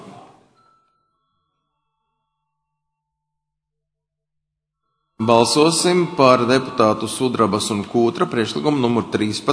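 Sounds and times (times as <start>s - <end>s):
parliamentary voting signal electronic bell tone: 0.6s - 3.4s
speech: 5.3s - 9.5s.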